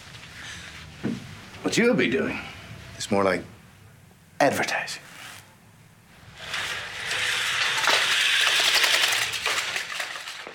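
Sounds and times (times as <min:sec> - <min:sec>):
speech: 0:01.7 - 0:02.5, 0:03.1 - 0:03.5, 0:04.4 - 0:05.1
window blinds being drawn in a played video: 0:06.2 - 0:10.5.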